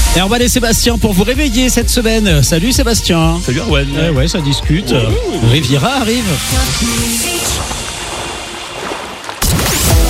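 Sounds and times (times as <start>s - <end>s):
speech: 0.2s - 7.6s
ocean waves with a roar of surf: 5.3s - 10.0s.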